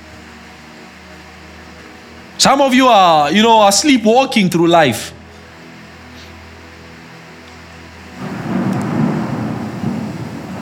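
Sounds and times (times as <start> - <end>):
speech: 2.4 - 5.2
thunder rumbling: 8.2 - 10.6.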